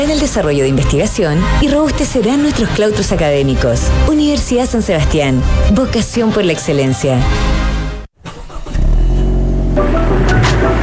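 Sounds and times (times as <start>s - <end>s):
speech: 0.0s - 7.7s
car engine revving: 8.2s - 10.8s.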